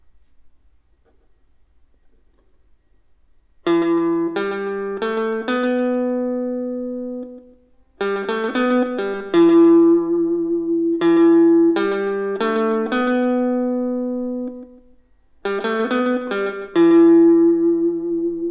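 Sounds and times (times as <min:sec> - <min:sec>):
electric guitar: 0:03.6 - 0:18.4.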